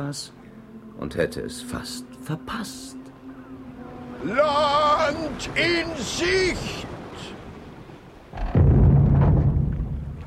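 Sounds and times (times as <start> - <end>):
speech: 0.0 - 0.4, 1.0 - 3.0, 4.2 - 7.4
sailing ship crashing onto a reef: 8.3 - 10.2.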